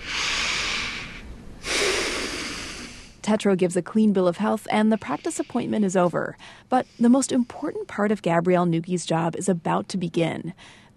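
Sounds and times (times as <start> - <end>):
deep breaths during a physical exam: 0.0 - 3.2, 4.4 - 8.1, 10.5 - 10.9
speech: 3.3 - 10.9.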